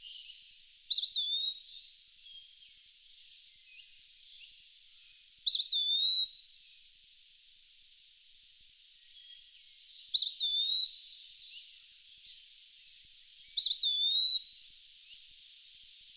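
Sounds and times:
faint hiss: 0:00.0 - 0:16.1
Eastern wood pewee (Contopus virens) singing clear slurred whistled phrases: 0:00.9 - 0:01.8, 0:05.5 - 0:06.4, 0:10.1 - 0:11.0, 0:13.6 - 0:14.5.

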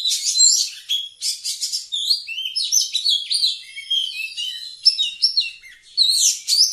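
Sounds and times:
Oriental magpie-robin singing with harsh bursts and slurred whistles: 0:00.0 - 0:06.7.

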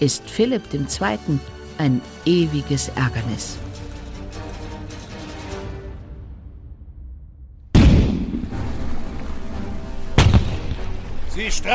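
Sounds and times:
speech: 0:00.0 - 0:03.7, 0:11.4 - 0:11.7
cannon fire from sailing ships in a sea battle: 0:07.7 - 0:08.7, 0:10.2 - 0:11.0.

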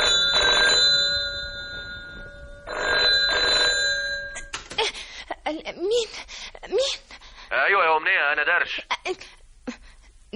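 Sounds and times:
telephone bell ringing in a home: 0:00.0 - 0:04.6
steady high hum: 0:00.0 - 0:10.3
speech: 0:08.3 - 0:09.3.

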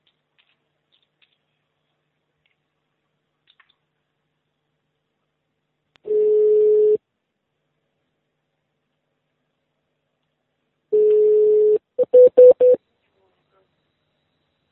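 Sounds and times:
telephone ringback tone while dialing a call: 0:06.1 - 0:07.0, 0:11.0 - 0:12.8.

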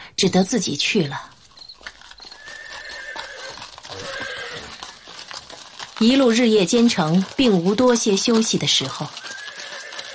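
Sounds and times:
speech: 0:00.2 - 0:01.3, 0:06.0 - 0:09.3
horse hooves clip-clopping: 0:00.4 - 0:10.1
horse neighing with drawn-out whinnies: 0:02.2 - 0:05.2, 0:09.2 - 0:10.1.

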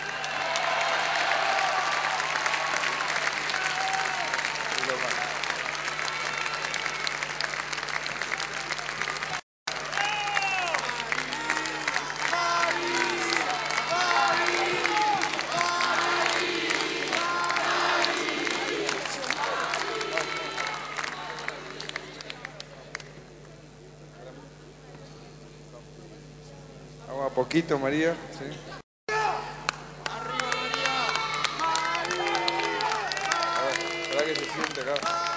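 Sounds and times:
crowd clapping and cheering at an election victory speech: 0:00.0 - 0:23.3, 0:29.5 - 0:35.3
crowd voices at an election victory speech: 0:11.3 - 0:22.9
speech: 0:27.5 - 0:28.7.

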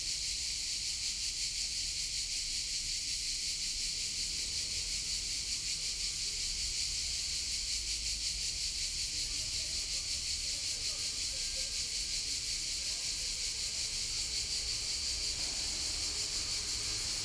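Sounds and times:
crickets and cicadas calling in a city street in summer in Bologna: 0:00.1 - 0:17.2.

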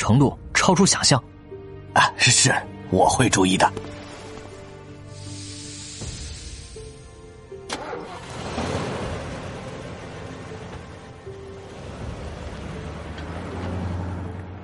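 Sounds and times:
speech: 0:00.0 - 0:01.4, 0:02.0 - 0:03.9
engines of buses pulling away and driving off: 0:05.4 - 0:14.6.

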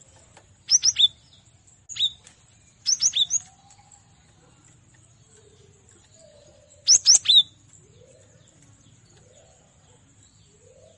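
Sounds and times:
Cinereous tit singing whistled notes: 0:00.7 - 0:01.2, 0:02.8 - 0:03.5, 0:06.8 - 0:07.6.

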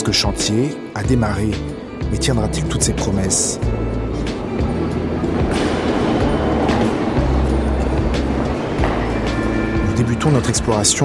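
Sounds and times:
RER line B commuter train running through underground station: 0:00.0 - 0:11.0
speech: 0:00.1 - 0:04.0, 0:10.2 - 0:11.0
train wheels clattering: 0:02.5 - 0:11.0.

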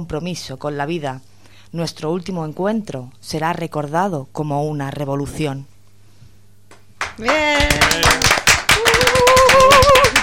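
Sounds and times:
speech: 0:00.0 - 0:05.7, 0:07.2 - 0:08.2
audience applause after a poetry reading: 0:06.7 - 0:10.2.

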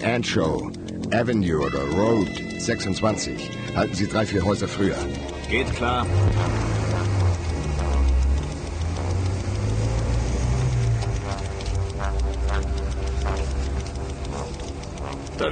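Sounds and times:
car engine idling in a parked car: 0:00.0 - 0:02.6, 0:03.2 - 0:15.4
speech: 0:00.1 - 0:06.8.

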